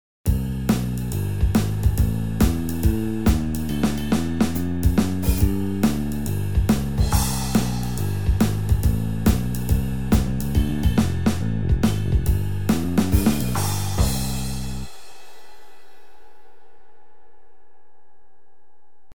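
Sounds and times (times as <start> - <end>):
jazz drums: 0.3 - 15.8.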